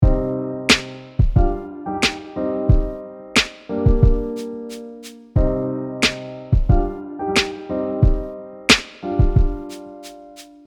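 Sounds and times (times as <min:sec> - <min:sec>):
old school rap drum beat: 0:00.0 - 0:01.6, 0:02.7 - 0:06.9, 0:08.0 - 0:10.6
old school rap piano: 0:00.0 - 0:10.6.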